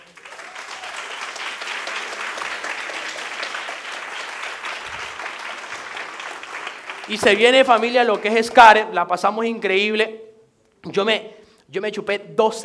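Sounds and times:
crowd applause: 0.0s - 8.8s
speech: 7.1s - 10.2s, 10.8s - 12.6s.

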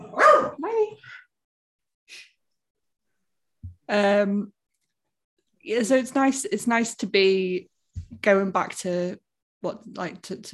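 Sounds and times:
dog barking: 0.0s - 0.6s
speech: 3.9s - 4.6s, 5.6s - 10.5s.

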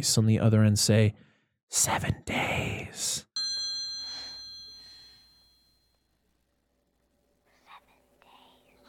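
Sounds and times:
speech: 0.0s - 3.3s
faint telephone ring: 3.4s - 6.2s
soft breathy whisper-like sounds: 7.4s - 8.8s.

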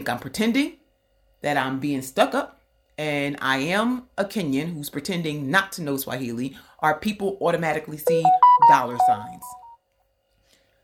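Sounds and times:
speech: 0.0s - 0.8s, 1.4s - 9.6s
phone electronic notification tone chirping: 8.1s - 9.8s.

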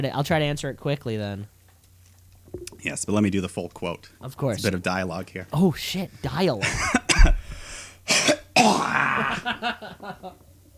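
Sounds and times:
speech: 0.0s - 1.6s, 2.8s - 7.0s, 8.6s - 10.5s
man clearing his throat: 6.9s - 7.4s, 8.1s - 9.5s.

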